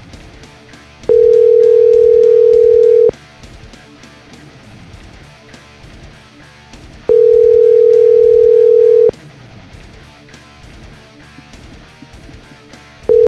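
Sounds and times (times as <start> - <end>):
telephone ringback tone: 1.1 - 3.1, 7.1 - 9.1.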